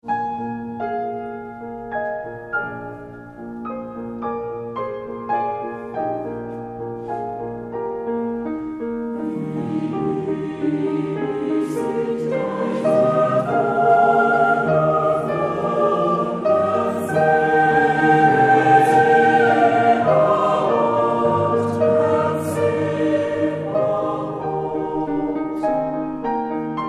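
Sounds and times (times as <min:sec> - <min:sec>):
piano four hands: 0:00.0 - 0:26.8
choir singing: 0:09.1 - 0:26.8.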